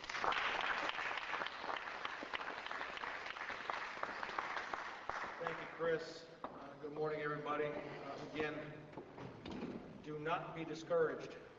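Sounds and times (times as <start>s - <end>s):
modest audience applause: 0.0s - 5.9s
speech: 5.8s - 9.1s, 10.1s - 11.5s.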